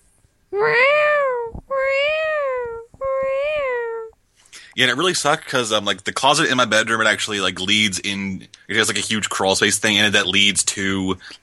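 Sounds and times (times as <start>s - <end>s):
speech: 0.6s - 1.1s, 4.8s - 11.4s
cat in heat yowling: 0.6s - 4.1s.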